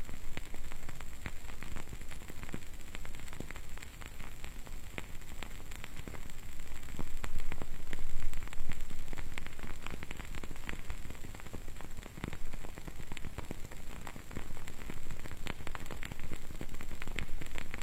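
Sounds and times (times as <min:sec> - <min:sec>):
burning candle crackling and ticking: 0:00.0 - 0:17.8.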